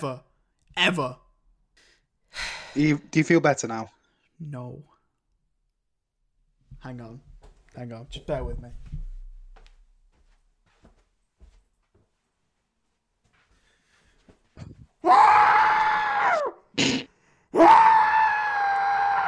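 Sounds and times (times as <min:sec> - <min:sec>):
speech: 0:00.0 - 0:01.2, 0:02.3 - 0:04.9, 0:06.8 - 0:08.8
man screaming into a pillow: 0:15.0 - 0:16.6, 0:17.5 - 0:19.2.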